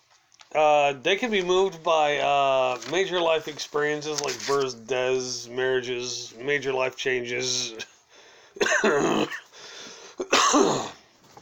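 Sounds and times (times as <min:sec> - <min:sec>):
faint hiss: 0:00.0 - 0:11.4
speech: 0:00.5 - 0:07.9, 0:08.6 - 0:09.4, 0:10.2 - 0:11.0
harsh loud coughing fits: 0:08.6 - 0:11.0.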